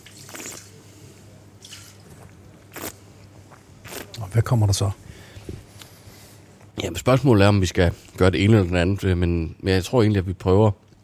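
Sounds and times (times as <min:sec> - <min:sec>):
person gulping and slurping a glass of wine: 0:00.2 - 0:00.7, 0:02.0 - 0:04.2
speech: 0:04.4 - 0:05.1, 0:07.0 - 0:10.8.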